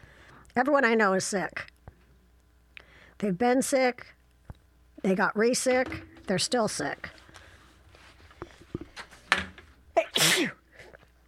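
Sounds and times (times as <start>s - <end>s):
speech: 0.6s - 1.7s, 3.2s - 4.2s, 5.0s - 7.2s
sneeze: 10.0s - 10.6s.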